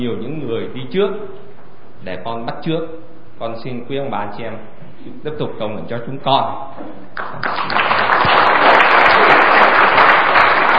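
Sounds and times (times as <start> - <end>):
speech: 0.0 - 1.4, 2.0 - 9.5
large audience applauding: 7.2 - 10.7.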